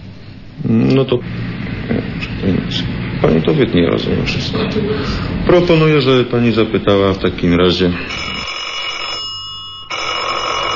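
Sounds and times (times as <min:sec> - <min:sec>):
speech: 0:00.6 - 0:08.3
telephone ringing with a sustained electronic trill: 0:08.0 - 0:10.7.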